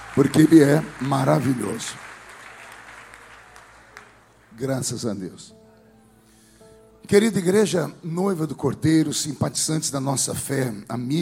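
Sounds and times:
audience applause: 0.0 - 4.5
speech: 0.2 - 2.1, 4.6 - 5.6, 7.0 - 11.2.

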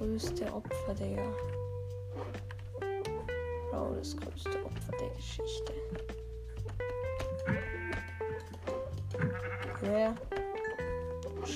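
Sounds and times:
speech: 0.2 - 1.6, 2.2 - 2.9, 3.7 - 7.7
steady droning tonal background: 2.2 - 11.5
sheep bleating: 7.4 - 10.2.

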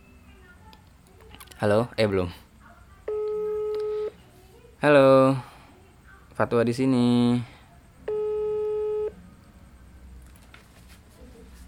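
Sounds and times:
faint hiss: 0.0 - 11.6
speech: 1.6 - 2.4, 4.8 - 5.5, 6.4 - 7.5
telephone ringback tone on an unanswered call: 3.1 - 4.2, 8.1 - 9.2.

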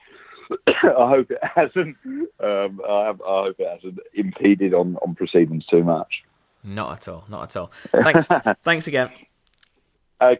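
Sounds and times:
coughing and throat clearing: 0.4 - 2.4
speech: 0.5 - 9.3, 10.2 - 10.3.

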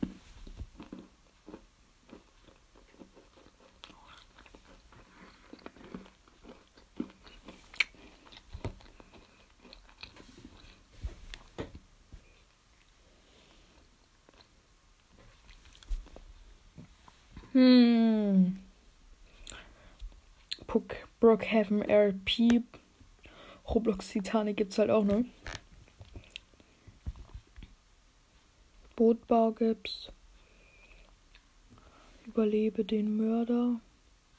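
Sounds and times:
chewing crunchy chocolate crisp flakes: 0.7 - 11.5
mouth sounds: 17.4 - 18.7
speech: 17.6 - 18.4, 21.2 - 22.8, 23.7 - 25.4, 29.2 - 30.2, 32.4 - 33.9.

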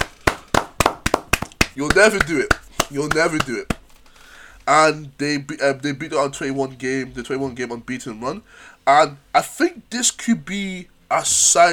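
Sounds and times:
hand claps: 0.0 - 3.9
speech: 1.8 - 3.8, 4.7 - 11.7.

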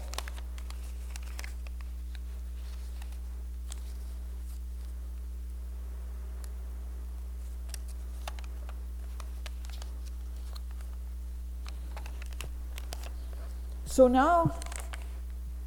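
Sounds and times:
sheet of post-it paper being folded: 0.0 - 5.0, 7.4 - 11.0, 11.6 - 13.8, 14.5 - 15.3
steady low hum: 0.0 - 15.6
speech: 14.0 - 14.6.

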